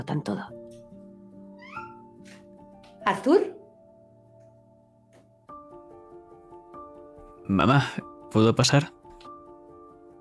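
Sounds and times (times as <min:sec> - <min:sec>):
speech: 0:00.0 - 0:00.6, 0:03.1 - 0:03.6, 0:07.5 - 0:09.0
cat shut inside a closet meowing: 0:01.5 - 0:02.2.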